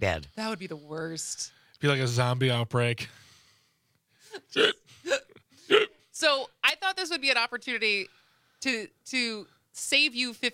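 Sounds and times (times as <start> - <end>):
speech: 0.0 - 3.2, 4.4 - 10.5
person hiccuping: 4.5 - 6.0.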